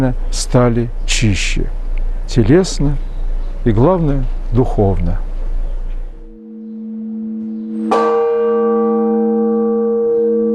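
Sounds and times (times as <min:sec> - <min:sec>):
speech: 0:00.0 - 0:05.2
church bell ringing the Blagovest: 0:06.2 - 0:10.5.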